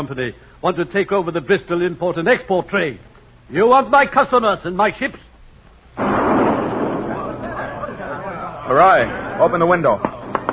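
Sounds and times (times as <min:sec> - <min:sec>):
speech: 0:00.0 - 0:05.3, 0:08.7 - 0:10.1
cannon fire from a pirate ship attacking a vessel in a town harbour: 0:06.0 - 0:08.0.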